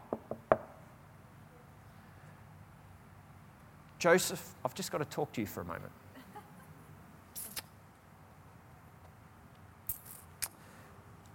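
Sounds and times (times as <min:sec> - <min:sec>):
knocks on a door with a brief hollow ring: 0:00.0 - 0:00.7
speech: 0:04.0 - 0:06.0.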